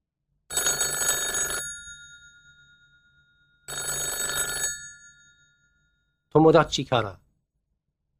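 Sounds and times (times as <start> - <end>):
telephone ringing with an electronic trill: 0.5 - 6.0
speech: 6.3 - 7.2.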